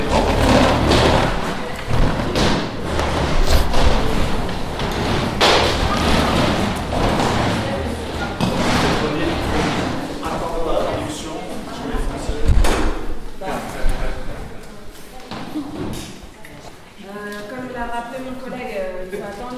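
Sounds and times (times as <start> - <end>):
chair thuds as people stand: 0.0 - 10.0
chairs pushed back across the floor: 0.0 - 14.3
murmur of voices in a room full of people: 0.0 - 19.5.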